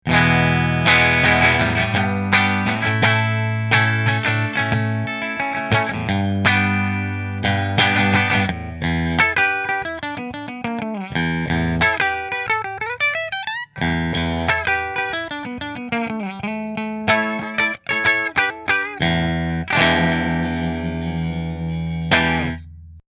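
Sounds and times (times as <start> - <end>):
custom quilt top electric guitar with voodoo bridge: 0.0 - 22.9.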